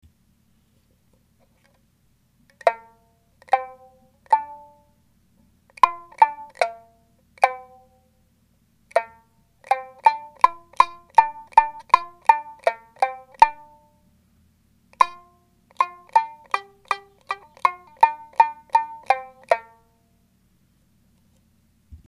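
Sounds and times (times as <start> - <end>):
ichigenkin one-string zither playing: 2.6 - 5.0, 5.8 - 8.0, 8.9 - 14.0, 15.0 - 20.0.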